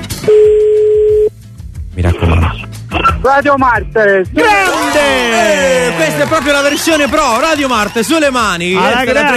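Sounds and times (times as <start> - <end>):
steady electronic phone-line tone on a call: 0.3 - 1.3
speech: 3.3 - 9.3.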